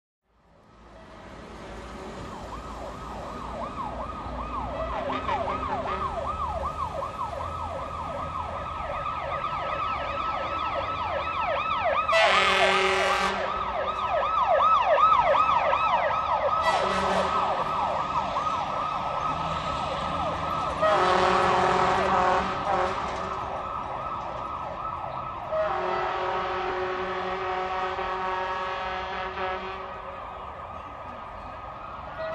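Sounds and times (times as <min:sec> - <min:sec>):
distant fire truck siren: 0:00.4 - 0:32.3
distant fire truck horn honking: 0:04.8 - 0:06.5, 0:12.0 - 0:14.1, 0:16.5 - 0:18.4, 0:20.2 - 0:23.6, 0:25.4 - 0:30.3, 0:32.1 - 0:32.3.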